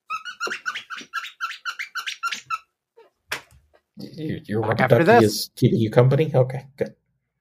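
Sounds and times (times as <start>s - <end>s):
squeaky dog toy being squeezed: 0.0s - 2.7s
speech: 4.2s - 7.0s.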